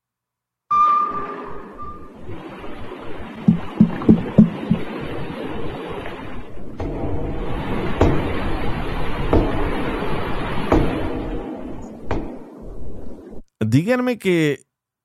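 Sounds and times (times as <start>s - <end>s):
brief tone: 0.7s - 2.2s
dense steady underwater rumble and hiss: 1.8s - 13.4s
sharp underwater knocks recorded near missing submarine: 3.4s - 5.0s, 6.7s - 9.9s, 10.6s - 11.4s, 12.0s - 12.5s
speech: 13.8s - 14.6s.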